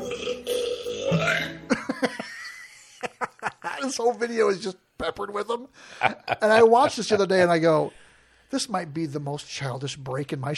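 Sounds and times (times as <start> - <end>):
long loud croaking burp: 0.0 - 1.7
laughter: 1.7 - 3.9, 5.9 - 7.4
speech: 3.8 - 10.5.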